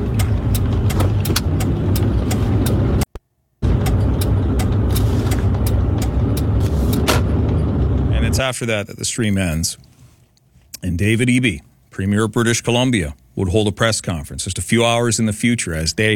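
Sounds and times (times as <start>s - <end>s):
large vehicles driving with heavy engines rumbling: 0.0s - 9.6s
speech: 8.4s - 10.0s, 10.8s - 16.1s.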